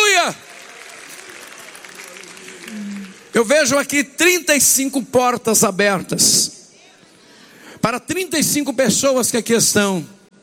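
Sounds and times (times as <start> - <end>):
church congregation clapping hands: 0.0 - 4.4
speech: 3.4 - 6.6, 7.8 - 10.2.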